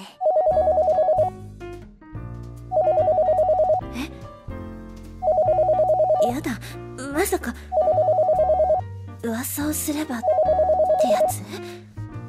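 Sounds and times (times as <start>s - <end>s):
soft music: 0.0s - 12.2s
telephone ringing with trilling bursts: 0.2s - 1.4s, 2.7s - 3.8s, 5.2s - 6.4s, 7.8s - 8.9s, 10.2s - 11.3s
speech: 9.5s - 11.8s.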